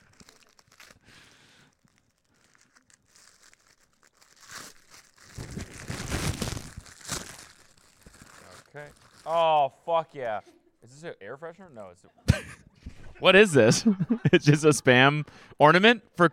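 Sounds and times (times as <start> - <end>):
wrapping paper crinkling and crumpling: 0.0 - 9.6
wrapping paper tearing: 2.8 - 9.4
speech: 8.8 - 12.4, 13.2 - 16.3
laughter: 12.1 - 15.3.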